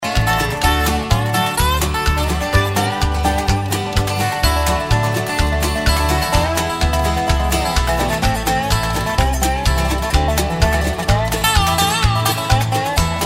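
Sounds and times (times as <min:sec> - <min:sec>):
dobro: 0:00.0 - 0:13.2.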